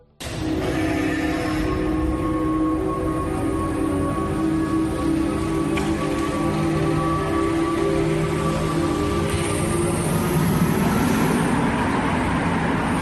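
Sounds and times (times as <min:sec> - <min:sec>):
hydrogen-powered car running with electric whine: 0:00.2 - 0:12.9.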